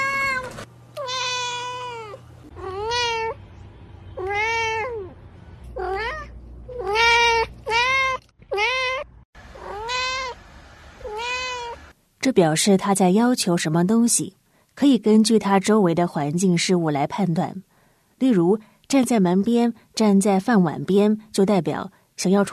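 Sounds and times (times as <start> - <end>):
cat meowing with medium-long drawn-out calls: 0.0 - 3.4, 4.2 - 5.2, 5.8 - 10.4, 11.0 - 11.9
speech: 12.3 - 22.5.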